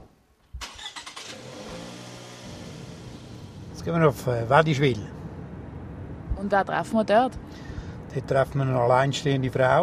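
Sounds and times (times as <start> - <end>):
car engine cranking, starting and driving off: 0.6 - 6.2
speech: 3.8 - 5.2, 6.4 - 9.8.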